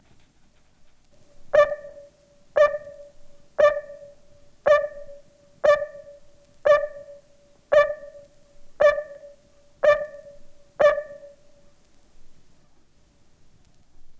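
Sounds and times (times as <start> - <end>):
barking tree frog Hyla gratiosa calling: 1.5 - 11.8.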